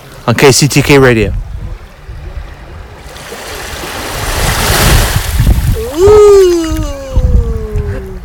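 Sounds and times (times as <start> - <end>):
Mediterranean Sea waves and surf: 0.0 - 8.2
speech: 0.3 - 1.4.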